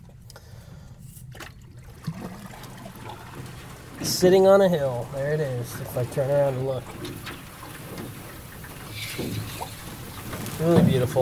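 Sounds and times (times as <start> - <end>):
paddling in lake water among giant lily pads: 0.0 - 11.1
water splash: 1.2 - 11.1
speech: 4.0 - 7.4, 10.6 - 11.1.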